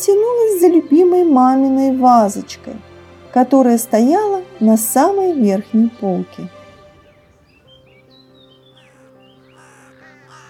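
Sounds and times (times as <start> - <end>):
speech: 0.0 - 6.6
steady tonal background: 0.0 - 10.4
crows cawing as they fly past outside a window: 7.6 - 10.4.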